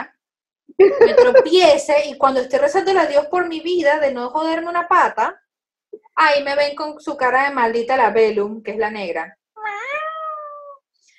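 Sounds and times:
speech: 0.8 - 5.4, 6.2 - 9.4
raspy cat meow: 9.6 - 10.8.

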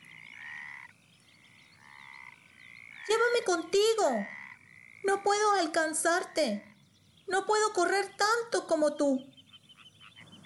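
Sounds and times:
frog croaking in long buzzing trilled calls: 0.0 - 6.9, 9.2 - 10.4
chorus of frogs or insects: 0.0 - 10.4
speech: 3.1 - 4.4, 5.0 - 6.7, 7.3 - 9.3.

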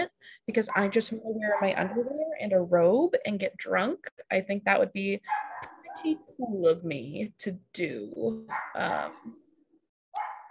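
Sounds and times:
speech: 0.5 - 9.4
dogs barking in sharp harmonic yelps: 0.7 - 2.1, 5.3 - 6.1, 8.5 - 8.9, 10.1 - 10.4.

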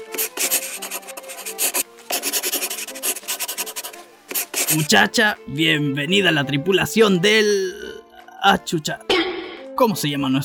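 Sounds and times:
pen scratching on paper while signing papers: 0.0 - 4.9
speech: 4.7 - 7.8, 8.4 - 9.1, 9.8 - 10.4.

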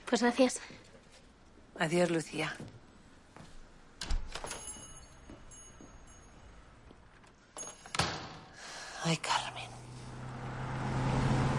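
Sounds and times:
speech: 0.1 - 0.9, 1.8 - 2.8, 9.0 - 9.4
broad road noise: 4.8 - 11.5
car engine drone while driving: 9.5 - 11.5.

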